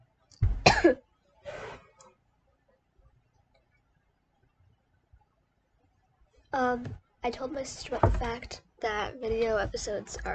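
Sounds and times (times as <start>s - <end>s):
forceful rough coughing: 0.6s - 1.0s
speech: 0.8s - 1.0s, 6.6s - 10.3s.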